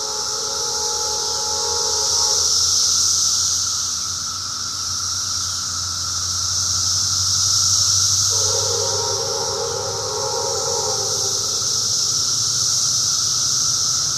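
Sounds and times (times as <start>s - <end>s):
low hum: 0.0s - 3.6s, 8.2s - 12.5s
steady tonal whine: 0.0s - 4.3s, 7.8s - 14.1s
cicadas droning: 0.0s - 14.1s.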